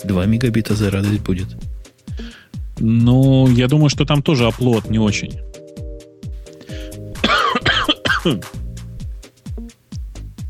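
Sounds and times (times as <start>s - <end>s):
speech: 0.0s - 1.8s, 2.8s - 5.5s, 8.2s - 8.6s
harsh breathy coughs from a person feeling unwell: 7.2s - 8.6s.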